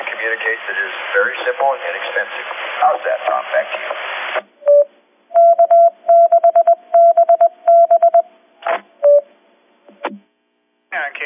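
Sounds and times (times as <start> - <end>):
crackling bursts of static: 0.0 - 4.5
speech: 0.2 - 4.5
Morse code identification beeps of a radio repeater: 4.7 - 8.3, 9.0 - 9.3.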